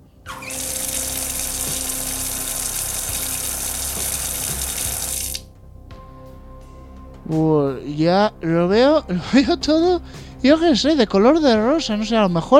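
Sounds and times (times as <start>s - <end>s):
water pouring: 0.3s - 5.5s
speech: 7.3s - 12.5s.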